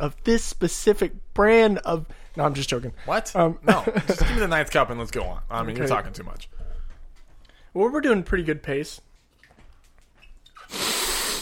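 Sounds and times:
speech: 0.0 - 6.6, 7.7 - 9.1
laughter: 3.6 - 4.6
person sniffing a drink in a cup during a flavor tasting: 10.6 - 11.3.

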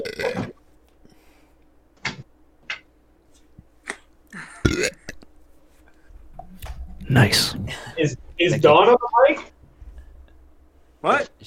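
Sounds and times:
short low burp: 0.0 - 0.6, 4.6 - 5.2
speech: 7.1 - 9.5, 11.0 - 11.4.

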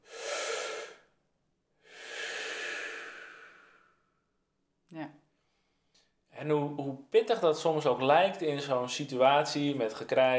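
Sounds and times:
long airy exhale through the mouth: 0.0 - 1.2, 1.8 - 4.2
person breathing in: 0.0 - 1.2, 1.8 - 4.2
speech: 6.4 - 10.3.

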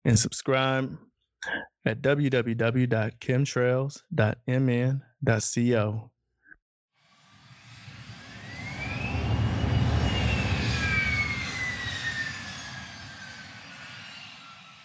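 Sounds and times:
speech: 0.0 - 6.1
airplane engines roaring during takeoff: 7.4 - 14.8.

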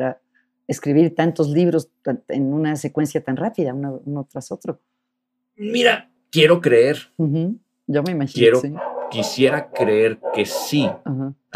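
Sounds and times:
speech: 0.0 - 4.9, 5.6 - 11.5
dog barking: 8.5 - 11.1.

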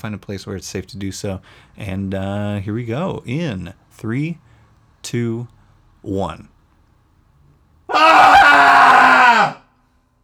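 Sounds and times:
speech: 0.0 - 6.5
several voices in a group cathartic scream: 7.9 - 9.6.

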